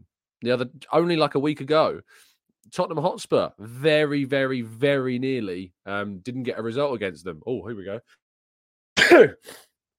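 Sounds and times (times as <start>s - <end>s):
speech: 0.4s - 8.2s, 9.0s - 9.7s
person sneezing into a microphone: 9.0s - 9.7s.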